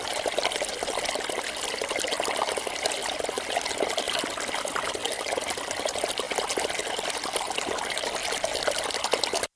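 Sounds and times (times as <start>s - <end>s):
fast-flowing stream water gurgling over stones in a cold windy place: 0.0s - 9.5s.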